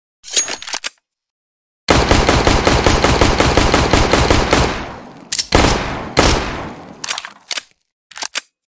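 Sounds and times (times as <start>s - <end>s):
Glock 18 pistol gunfire: 1.9s - 7.1s.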